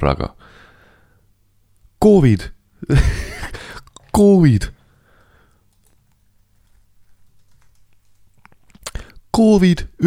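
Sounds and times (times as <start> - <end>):
speech: 0.0 - 0.6, 2.0 - 3.6, 4.2 - 4.8, 9.4 - 10.0
laughter: 2.9 - 3.8
typing on a computer keyboard: 6.6 - 8.7.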